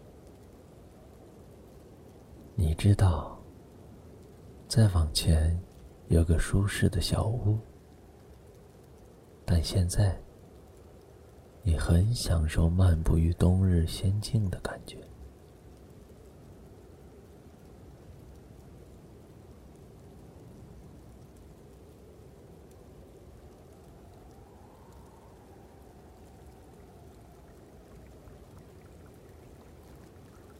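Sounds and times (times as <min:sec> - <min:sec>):
speech: 0:02.6 - 0:03.4, 0:04.7 - 0:07.7, 0:09.5 - 0:10.2, 0:11.6 - 0:15.0
babbling stream water rushing and burbling: 0:25.4 - 0:30.5.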